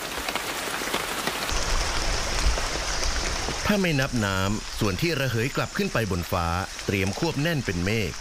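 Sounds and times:
water drops dripping among leaves in a forest: 0.0s - 8.1s
speech: 3.7s - 8.1s.

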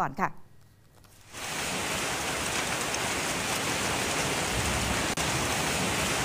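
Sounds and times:
speech: 0.0s - 0.4s
heavy rain and 1 cm hail pounding down in Bangkok, Thailand: 1.3s - 6.2s
strong gusting wind in Bangkok, Thailand: 1.4s - 6.2s.

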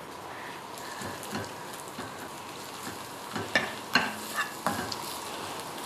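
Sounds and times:
soaked dried shrimp stir-frying in a little hot oil: 0.1s - 5.8s
utensil clicking and scraping while stirring in the pan: 0.9s - 5.4s.

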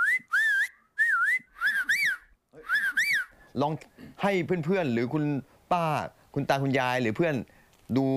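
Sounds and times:
person whistling a short wavering tune through pursed lips: 0.0s - 3.4s
speech: 3.6s - 8.1s.

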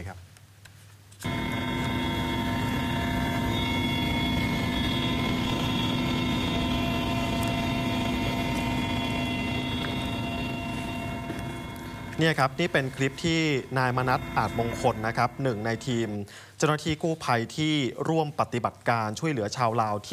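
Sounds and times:
helicopter engine roar while taking off: 1.2s - 16.2s
constant mechanical whine: 1.2s - 16.3s
speech: 12.2s - 20.1s.

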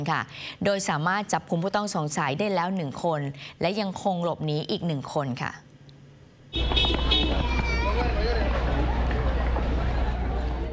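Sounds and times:
speech: 0.0s - 5.7s, 6.5s - 7.7s
loud continuous outdoor noise: 0.0s - 10.7s
horn-like tone: 6.5s - 7.4s
crowd shouting while fleeing a shooting at a food festival in Seattle: 7.0s - 10.7s.

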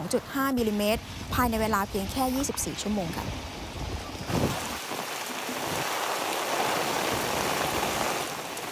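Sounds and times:
speech: 0.1s - 3.5s
low rumble: 0.6s - 4.5s
heavy rain pouring down: 3.5s - 8.7s.

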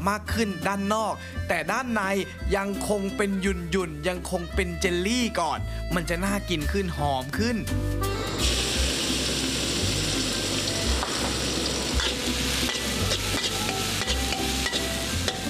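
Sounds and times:
speech: 0.0s - 8.6s
pounded chili and garlic sizzling in hot oil: 8.3s - 15.4s
stirring and scraping while stir-frying: 11.1s - 15.4s.

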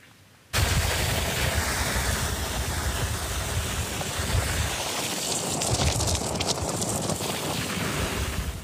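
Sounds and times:
landslide soil sliding onto Highway 108 in Mae Sariang, Thailand: 0.6s - 8.6s.

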